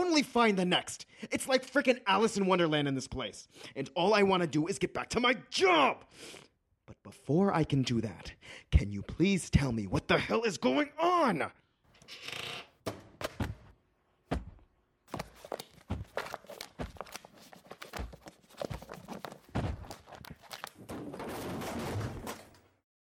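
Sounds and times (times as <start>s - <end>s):
speech: 0.2s - 6.5s, 7.1s - 13.0s
objects tumbling and clattering on the floor: 15.2s - 22.8s
scraping and rattling: 15.4s - 22.8s
shelf crashing over: 19.5s - 22.8s.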